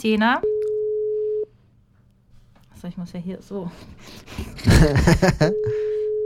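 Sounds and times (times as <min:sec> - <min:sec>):
speech: 0:00.0 - 0:00.5, 0:02.8 - 0:06.0
ringing tone from a cheap mobile phone on speakerphone: 0:00.4 - 0:01.5, 0:05.4 - 0:06.2
laughter: 0:04.4 - 0:05.9.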